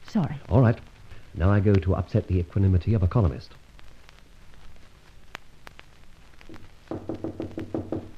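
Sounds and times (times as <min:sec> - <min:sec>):
speech: 0:00.1 - 0:03.6
urgent loud hollow knocking on a door: 0:06.5 - 0:08.1.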